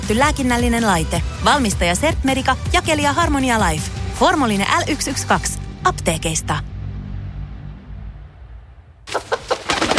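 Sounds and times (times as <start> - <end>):
speech: 0.1 - 6.7
low rumbling hum: 5.3 - 9.0.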